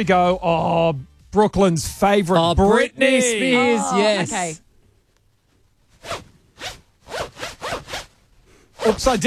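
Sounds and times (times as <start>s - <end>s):
speech: 0.0s - 4.6s, 8.8s - 9.2s
clothing zipper being zipped: 5.9s - 9.2s.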